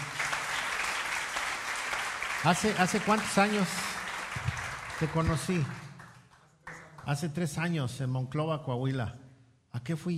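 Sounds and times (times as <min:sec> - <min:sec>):
audience applause welcoming guests: 0:00.0 - 0:07.1
speech: 0:02.4 - 0:03.9, 0:05.0 - 0:05.8, 0:07.1 - 0:09.2, 0:09.8 - 0:10.1.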